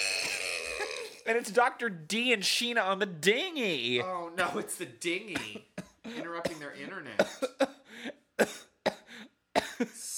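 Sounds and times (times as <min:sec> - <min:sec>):
speech: 0:01.3 - 0:07.7
harsh coughs: 0:05.4 - 0:07.8, 0:08.4 - 0:10.0.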